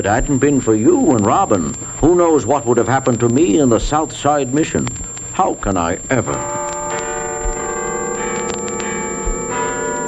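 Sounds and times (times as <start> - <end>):
speech: 0.0 - 6.6
church bells ringing midnight: 6.3 - 10.0.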